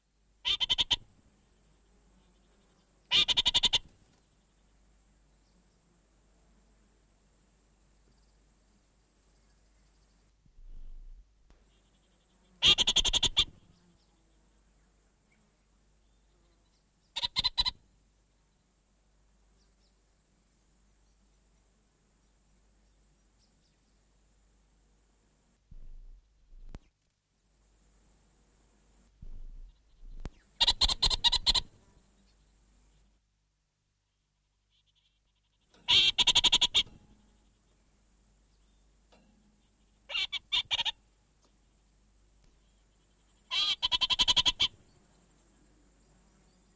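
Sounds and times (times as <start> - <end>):
orange-fronted parakeet song: 0.5 - 1.0, 3.1 - 3.9, 12.6 - 13.5, 29.2 - 31.7, 35.9 - 37.1, 40.1 - 41.0, 43.5 - 44.8.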